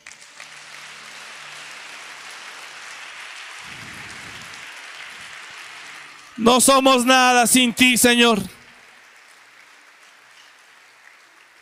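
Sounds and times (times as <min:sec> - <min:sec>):
large crowd applauding: 0:00.0 - 0:11.6
speech: 0:06.4 - 0:08.6.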